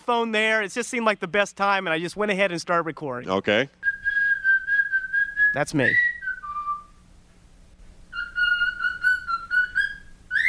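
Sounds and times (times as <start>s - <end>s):
speech: 0.1s - 4.0s, 5.5s - 6.0s
man whistling a short steady note: 3.8s - 7.0s, 8.1s - 10.4s.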